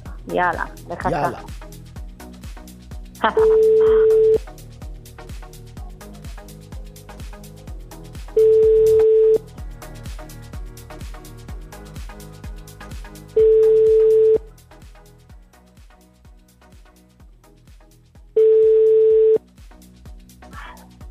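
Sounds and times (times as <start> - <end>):
speech: 0.2 - 1.8, 3.2 - 4.4
telephone ringing tones while placing a call: 8.4 - 9.4, 13.4 - 14.4, 18.4 - 19.4.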